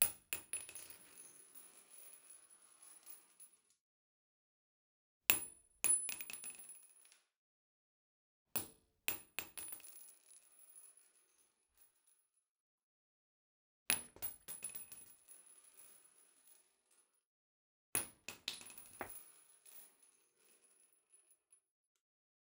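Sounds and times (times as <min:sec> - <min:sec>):
7.62 x 39 shell casings and cartridges impacting tile floor inside: 0:00.0 - 0:03.6, 0:05.3 - 0:07.1, 0:09.1 - 0:11.2, 0:13.9 - 0:17.0, 0:18.0 - 0:21.3.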